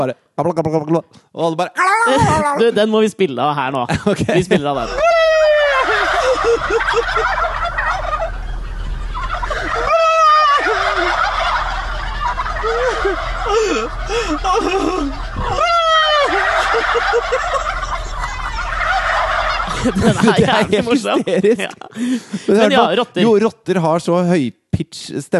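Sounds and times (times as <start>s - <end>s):
speech: 0.0s - 5.0s, 13.8s - 15.1s, 19.8s - 25.3s
laughter: 3.9s - 8.4s, 9.1s - 23.5s
large flock of turkeys gobbling at a farm: 4.7s - 23.3s
man imitating a turkey gobble call: 5.0s - 8.4s, 9.2s - 20.8s.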